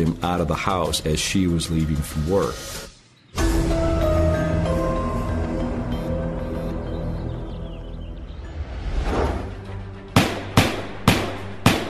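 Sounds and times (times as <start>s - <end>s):
speech: 0.0s - 2.9s
low musical drone: 3.4s - 11.8s
sharp gunshots: 10.2s - 11.8s.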